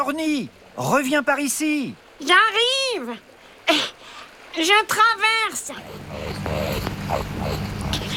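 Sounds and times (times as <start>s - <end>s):
speech: 0.0s - 3.9s, 4.6s - 7.6s
rakali Australian water rat growling: 5.6s - 8.1s.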